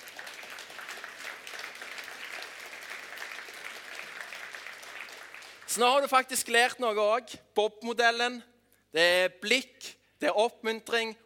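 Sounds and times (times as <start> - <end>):
crowd applauding: 0.0 - 6.2
speech: 5.8 - 11.2.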